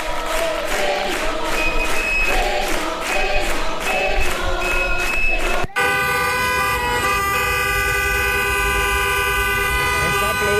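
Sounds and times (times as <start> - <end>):
traffic noise: 0.0 - 10.5
car horns honking during protest car march in València: 4.6 - 10.5.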